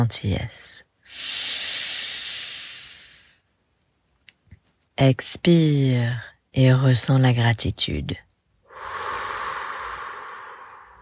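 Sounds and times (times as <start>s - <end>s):
speech: 0.0s - 1.5s, 5.0s - 8.2s
person breathing in slowly during guided meditation: 1.1s - 3.4s, 8.7s - 11.0s.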